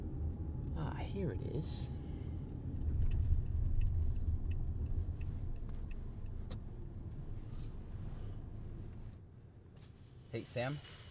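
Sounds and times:
car engine rumbling: 0.0s - 11.0s
speech: 0.8s - 2.0s, 10.3s - 11.0s
faint ticks and clicks: 2.5s - 7.2s.

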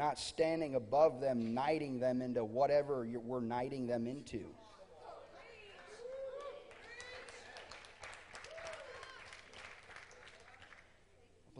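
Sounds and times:
speech: 0.0s - 4.8s
crowd cheering with raised voices and whoops: 5.6s - 9.6s
crowd clapping: 6.0s - 10.9s.

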